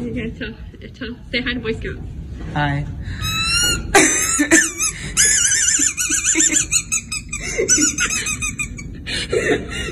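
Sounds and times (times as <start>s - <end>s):
speech: 0.2s - 3.3s, 9.1s - 9.9s
child's laughter squeaking from a swallowed squeaky toy: 3.2s - 8.9s.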